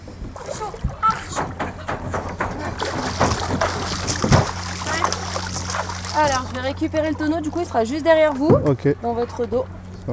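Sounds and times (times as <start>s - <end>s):
water splashed and poured over a hot kayak hull: 0.2s - 8.8s
speech: 6.2s - 10.1s.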